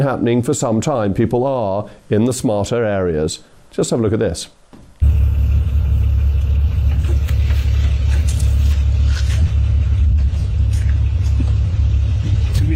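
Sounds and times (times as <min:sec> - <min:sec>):
speech: 0:00.0 - 0:05.2
car engine and tyres rumbling on a country road: 0:05.0 - 0:12.7.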